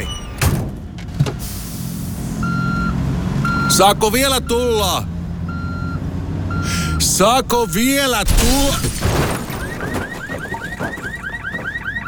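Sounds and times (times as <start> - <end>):
vehicle reversing beeps: 0.0 - 0.5, 2.4 - 4.9, 5.5 - 12.0
vehicle engine hum: 0.6 - 12.0
person calling out: 3.7 - 5.1, 6.7 - 9.0
speech: 3.8 - 5.1, 7.0 - 9.2.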